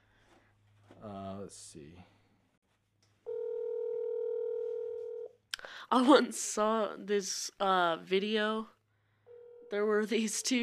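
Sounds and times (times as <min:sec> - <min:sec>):
speech: 0:01.0 - 0:02.2, 0:05.9 - 0:08.8, 0:09.7 - 0:10.6
telephone dial tone as a call is placed: 0:03.3 - 0:05.3.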